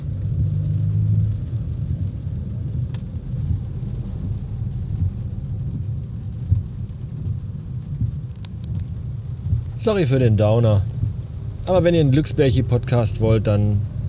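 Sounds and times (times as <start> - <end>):
low car engine rumble heard from inside a car in a traffic jam: 0.0 - 14.0
rain hissing on a car: 0.0 - 14.0
faint clicks and taps: 5.0 - 9.8
speech: 9.8 - 10.9, 11.7 - 14.0.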